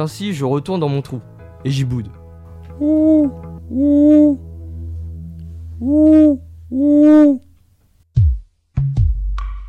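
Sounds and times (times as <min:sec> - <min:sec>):
speech: 0:00.0 - 0:02.2, 0:02.8 - 0:04.4, 0:05.8 - 0:07.4
owl hooting: 0:02.7 - 0:04.4, 0:05.8 - 0:07.5.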